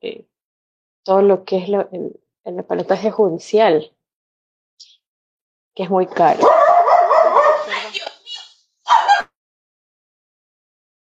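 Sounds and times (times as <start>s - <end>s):
speech: 1.0s - 4.0s, 5.8s - 6.6s
small dogs barking and yipping: 6.4s - 7.8s, 8.9s - 9.3s.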